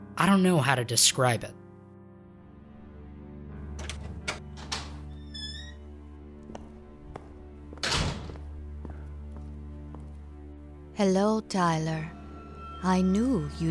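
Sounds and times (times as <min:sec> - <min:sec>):
speech: 0:00.2 - 0:01.6, 0:11.0 - 0:12.2, 0:12.8 - 0:13.6
door opening with soft knocks and thunks: 0:03.7 - 0:09.0.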